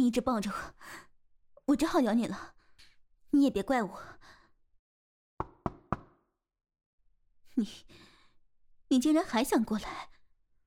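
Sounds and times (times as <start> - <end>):
speech: 0.0 - 1.1, 1.7 - 2.6, 3.3 - 4.4, 7.6 - 8.1, 8.9 - 10.1
knocking on a door: 5.4 - 6.2.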